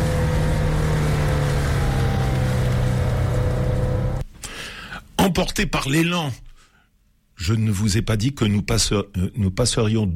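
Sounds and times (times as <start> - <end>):
car engine accelerating out of a built-up area: 0.0 - 4.2
constant road roar on a possibly rainy road: 0.0 - 4.2
speech: 5.2 - 6.4, 7.4 - 10.1.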